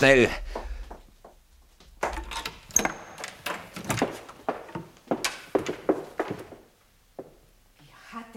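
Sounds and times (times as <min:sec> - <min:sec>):
person rushing down the stairs: 0:00.0 - 0:07.5
door opening: 0:01.9 - 0:06.7.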